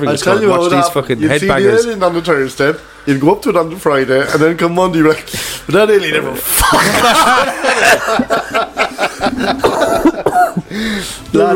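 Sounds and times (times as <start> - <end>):
speech: 0.0 - 8.8, 9.4 - 11.5
laughter: 6.6 - 11.0
fit of loud coughing: 9.1 - 10.8.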